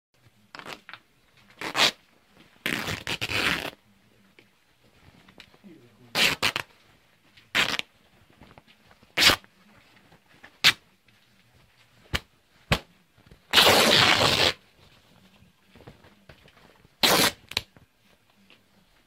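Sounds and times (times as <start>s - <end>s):
cloth tearing: 0.5s - 1.0s, 1.6s - 2.0s, 2.6s - 3.8s, 6.1s - 6.7s, 7.5s - 7.9s, 9.2s - 9.5s, 10.6s - 10.8s, 13.5s - 14.6s, 17.0s - 17.7s.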